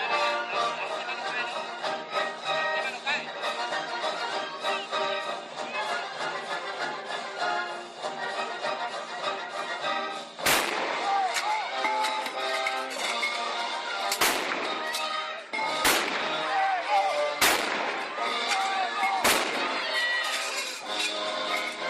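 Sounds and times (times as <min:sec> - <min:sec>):
full orchestra playing during rehearsal: 0:00.0 - 0:21.8
cannon booms during orchestra rehearsal: 0:10.4 - 0:11.1, 0:15.8 - 0:16.5, 0:17.4 - 0:18.2, 0:19.2 - 0:19.8.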